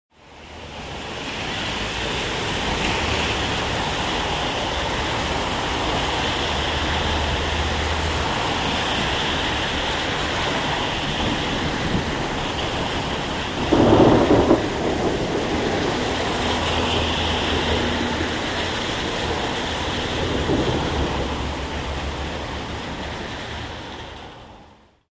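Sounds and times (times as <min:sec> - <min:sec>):
rain on the streets at Avenida Eva Peron and Magallanes: 0:00.1 - 0:25.1.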